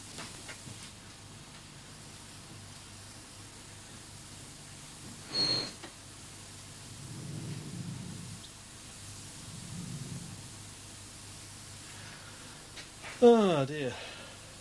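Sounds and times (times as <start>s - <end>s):
radio receiver static hiss: 0.0s - 14.5s
soft low rumbling swells: 6.8s - 8.5s, 9.2s - 10.7s
speech: 13.2s - 14.1s.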